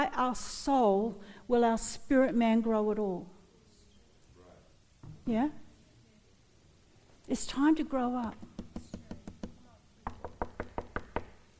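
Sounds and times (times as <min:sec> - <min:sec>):
speech: 0:00.0 - 0:03.4, 0:05.3 - 0:05.6, 0:07.3 - 0:08.5
crisp knocking on a door: 0:08.2 - 0:11.5.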